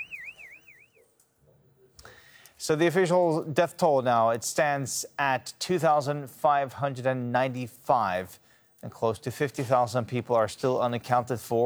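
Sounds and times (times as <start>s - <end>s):
warning alarm in an earthquake-damaged building at risk of collapse: 0.0s - 1.0s
low noise: 0.0s - 11.6s
speech: 2.6s - 11.6s.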